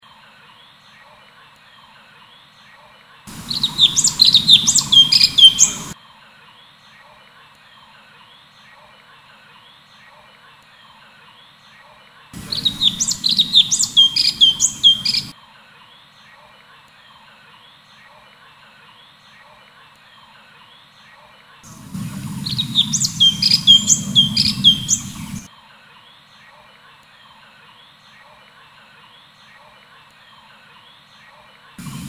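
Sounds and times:
cucak cungkok bird chirping: 3.3 - 6.0, 12.4 - 15.3, 21.7 - 25.5, 31.8 - 32.0.

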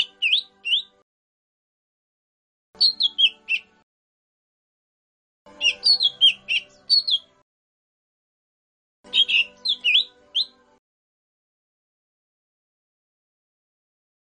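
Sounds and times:
Lesser green leafbird song: 0.0 - 1.0, 2.8 - 3.7, 5.5 - 7.3, 9.1 - 10.6.

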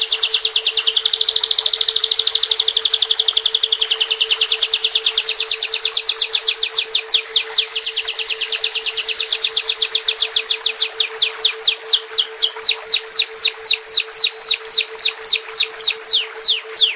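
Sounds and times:
bird song trill of high downward-sweeping chirps: 0.0 - 16.9
steady low hum: 0.0 - 16.9.

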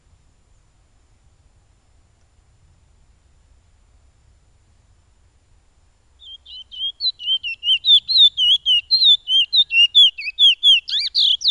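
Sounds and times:
Piolet bird singing high looping whistled notes: 6.2 - 11.4.

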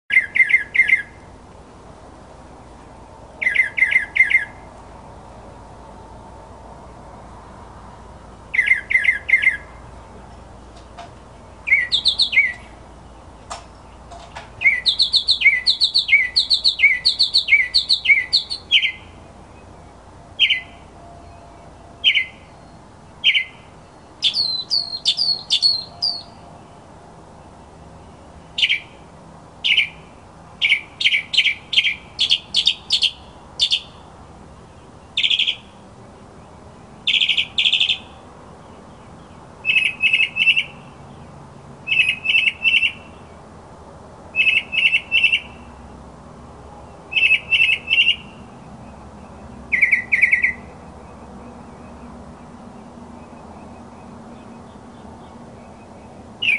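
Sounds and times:
northern mockingbird singing: 0.1 - 1.3, 3.0 - 4.7, 8.2 - 43.5, 44.3 - 46.0, 46.8 - 56.5.

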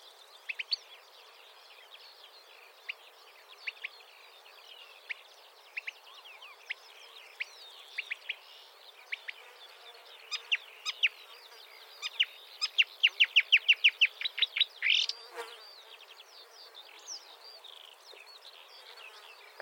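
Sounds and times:
marsh warbler song with sharp high notes and twitters: 0.0 - 19.6.

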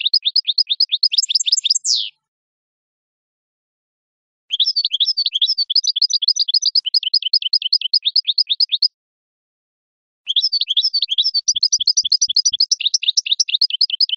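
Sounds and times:
goldfinch singing: 0.0 - 2.2, 4.5 - 8.9, 10.3 - 14.1.

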